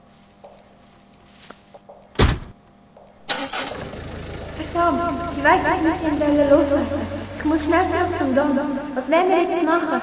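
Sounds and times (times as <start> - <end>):
car door thudding shut: 2.1 - 2.6
car engine starting and pulling away: 3.2 - 10.0
speech: 4.8 - 10.0.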